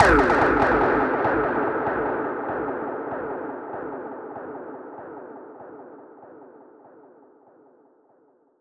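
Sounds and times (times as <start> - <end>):
dub percussion hit: 0.0 - 3.3.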